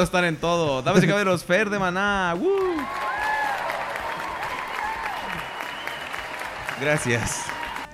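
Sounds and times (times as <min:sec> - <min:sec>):
speech: 0:00.0 - 0:03.2, 0:06.8 - 0:07.6
crowd applauding: 0:02.3 - 0:07.9
whistles and cheers: 0:02.4 - 0:07.9.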